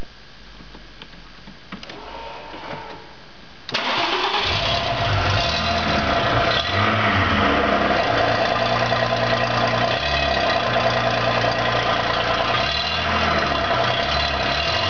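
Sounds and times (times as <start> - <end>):
car exhaust noise: 3.7 - 14.8.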